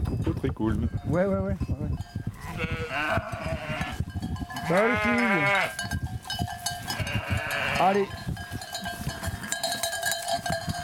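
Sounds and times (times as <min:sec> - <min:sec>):
speech: 0:00.4 - 0:04.0, 0:04.6 - 0:06.0, 0:07.8 - 0:08.2
ewe or lamb bleating in a flock: 0:02.4 - 0:04.0, 0:04.6 - 0:05.8, 0:06.9 - 0:08.0
steady jingling sheep bells: 0:04.1 - 0:10.8.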